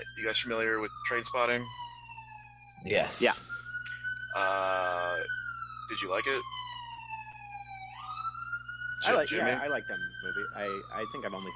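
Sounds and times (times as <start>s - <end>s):
siren wailing outside: 0.0s - 11.5s
speech: 0.1s - 1.8s, 2.8s - 3.5s, 4.4s - 6.6s, 9.0s - 11.5s
low hum: 8.0s - 11.4s.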